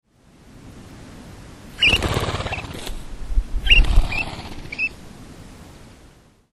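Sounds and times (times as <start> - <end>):
Japanese quail: 1.8 - 3.0, 3.6 - 5.0.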